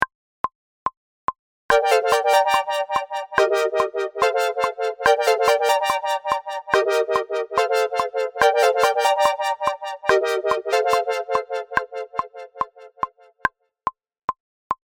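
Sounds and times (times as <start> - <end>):
chord: 1.7 - 13.2.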